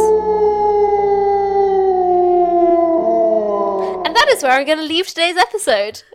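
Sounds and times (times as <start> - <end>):
giant wolf howling: 0.0 - 4.3
speech: 4.4 - 6.1.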